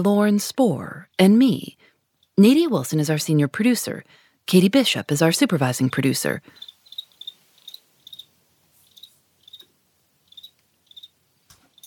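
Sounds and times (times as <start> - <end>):
speech: 0.0 - 6.7
crickets chirping loudly: 6.5 - 11.8.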